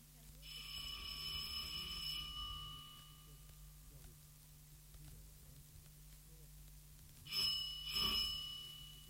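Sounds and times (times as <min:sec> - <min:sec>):
low hum: 0:00.0 - 0:09.0
doorbell chime ringing at a house door: 0:00.4 - 0:03.9, 0:07.3 - 0:09.0.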